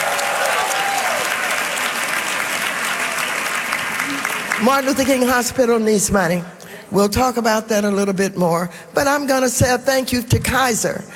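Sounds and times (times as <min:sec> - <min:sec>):
dense applause from a sizable audience: 0:00.0 - 0:05.2
speech: 0:04.6 - 0:11.1.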